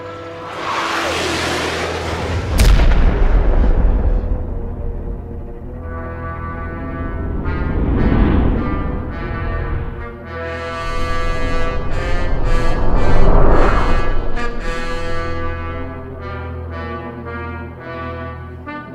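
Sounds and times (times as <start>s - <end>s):
sci-fi torpedo launch roaring rumble: 0.7s - 16.5s
low sustained droning tones: 2.1s - 16.8s
sci-fi torpedo explosion blast: 2.3s - 10.0s, 10.8s - 16.3s.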